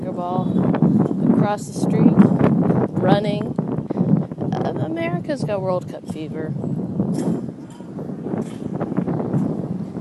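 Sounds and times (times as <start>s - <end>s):
wind rushing on a windy day: 0.0s - 9.9s
speech: 0.2s - 0.6s, 1.5s - 2.4s, 3.0s - 3.6s, 4.9s - 7.5s
flag hardware clanking against metal pole: 7.1s - 9.6s.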